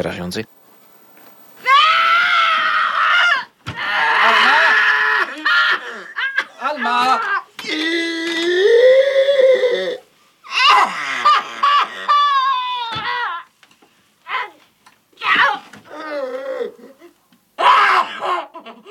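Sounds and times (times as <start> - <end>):
speech: 0.0 - 0.6
elderly woman screaming in terror while dying: 1.6 - 13.5, 15.2 - 16.8, 17.6 - 18.5.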